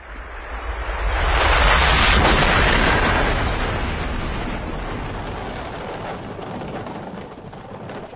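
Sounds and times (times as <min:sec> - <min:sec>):
massive explosion blasting the Central Alps: 0:01.0 - 0:08.1.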